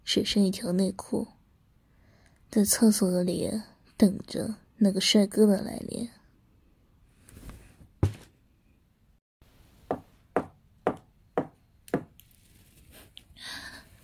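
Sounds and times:
speech: 0:00.1 - 0:01.4, 0:02.5 - 0:06.2
soft rustling: 0:07.2 - 0:08.4, 0:12.2 - 0:14.0
thump: 0:08.0 - 0:08.3
firm knocks on a toilet cubicle door: 0:09.9 - 0:12.1.

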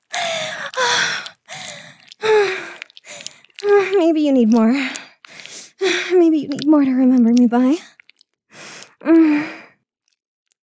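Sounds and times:
heavy breathy panting with gasping or moaning: 0:00.1 - 0:04.0, 0:04.8 - 0:06.2, 0:07.8 - 0:09.8
speech: 0:03.9 - 0:05.0, 0:06.2 - 0:07.9, 0:09.0 - 0:09.6.

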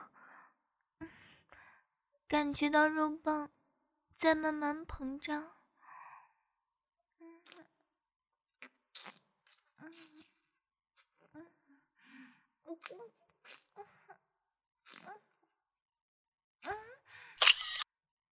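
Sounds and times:
speech: 0:02.4 - 0:03.6, 0:04.2 - 0:05.6, 0:09.9 - 0:10.2, 0:12.7 - 0:13.2
camera shutter clicks taking photos: 0:17.4 - 0:17.9.

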